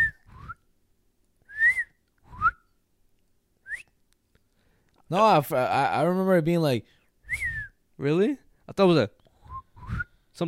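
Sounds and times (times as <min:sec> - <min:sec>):
person imitating a whistle with their mouth: 0:00.0 - 0:00.6, 0:01.5 - 0:02.6, 0:07.3 - 0:07.8, 0:09.4 - 0:10.2
speech: 0:05.1 - 0:09.2.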